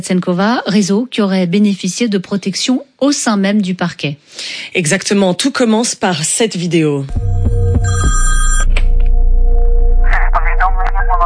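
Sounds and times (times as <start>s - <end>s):
speech: 0.0s - 8.3s
telephone ringing with a bright buzzing bell tone: 7.1s - 9.0s
indistinct voice-like sounds: 10.1s - 11.2s.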